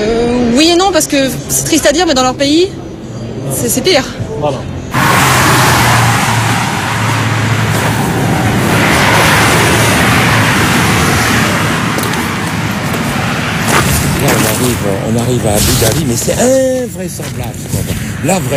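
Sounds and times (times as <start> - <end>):
speech: 1.0 - 2.8, 3.4 - 4.7, 14.7 - 18.5
road traffic of large construction trucks: 4.7 - 16.7.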